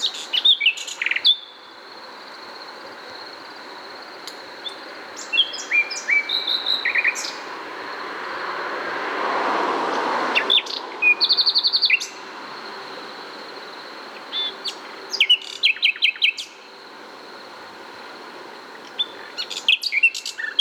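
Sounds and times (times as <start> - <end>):
common nightingale Luscinia megarhynchos song with whistles, chirps and trills: 0.0 - 8.5, 9.9 - 20.5
passing vehicle: 5.0 - 14.3.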